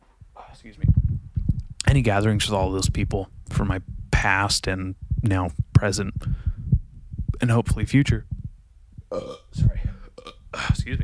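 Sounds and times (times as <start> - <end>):
speech: 0.6 - 1.2, 1.9 - 6.4, 7.4 - 8.3, 9.1 - 9.8
loud croaking burps: 9.1 - 10.7.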